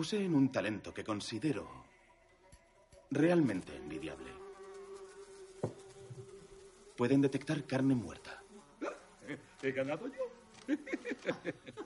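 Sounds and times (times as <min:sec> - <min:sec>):
speech: 0:00.0 - 0:01.9, 0:03.1 - 0:04.4, 0:07.0 - 0:08.4, 0:09.3 - 0:11.8
carrion flies buzzing inside a jar on a gaming table: 0:01.0 - 0:11.8
brief soft knock: 0:05.6 - 0:05.8
laughter: 0:10.5 - 0:11.8.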